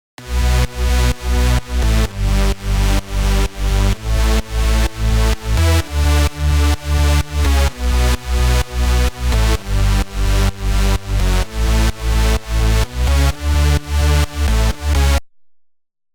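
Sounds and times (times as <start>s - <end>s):
full bass: 0.0s - 15.2s.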